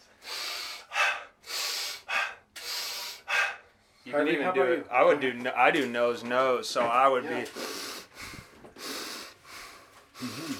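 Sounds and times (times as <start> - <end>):
deep breaths: 0.0 - 4.1, 7.4 - 10.5
speech: 4.1 - 7.7.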